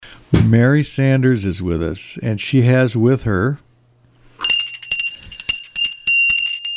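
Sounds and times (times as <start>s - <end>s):
speech: 0.4s - 3.7s
hand bell ringing in rapid shakes: 4.4s - 6.7s.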